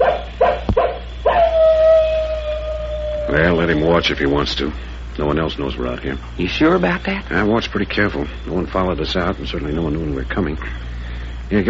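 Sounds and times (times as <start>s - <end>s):
male wolf on a ridge yipping and howling: 0.0s - 4.2s
speech: 3.3s - 11.6s.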